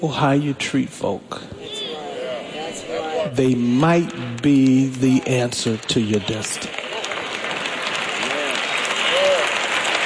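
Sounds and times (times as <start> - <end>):
speech: 0.0 - 1.6, 2.8 - 6.8
faint voices calling out: 1.6 - 3.4
audience applause during a speech: 3.4 - 10.0.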